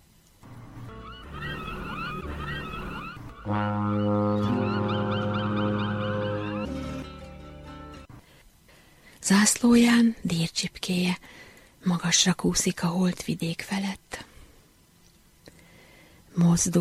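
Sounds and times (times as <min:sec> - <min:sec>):
birds chirping: 0:00.5 - 0:07.1
ship's horn blowing one long deep blast: 0:00.8 - 0:07.1
speech: 0:03.5 - 0:04.0, 0:09.3 - 0:14.0, 0:16.4 - 0:16.7.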